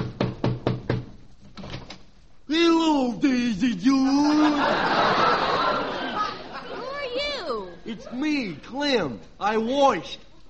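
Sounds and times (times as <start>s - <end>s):
knocking on a door: 0.0s - 1.2s
speech: 2.5s - 5.2s, 7.9s - 10.2s
laughter: 3.8s - 8.3s.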